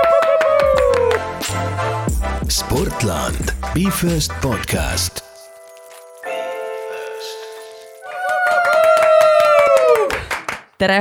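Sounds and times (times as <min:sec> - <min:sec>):
lively applause from a small group: 0:00.0 - 0:01.3, 0:08.0 - 0:10.8
speech: 0:02.5 - 0:05.2, 0:10.8 - 0:11.0.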